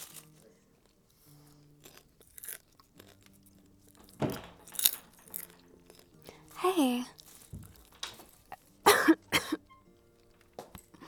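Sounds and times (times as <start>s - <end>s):
speech: 6.6s - 7.2s
person coughing after inhaling popcorn: 8.8s - 9.6s
throat clearing: 8.8s - 9.6s.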